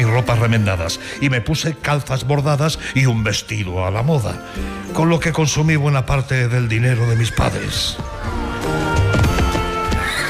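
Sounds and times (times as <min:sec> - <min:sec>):
speech: 0:00.1 - 0:08.8
horse hooves clip-clopping: 0:07.3 - 0:10.2
strong tan-coloured horse neighing: 0:09.7 - 0:10.2.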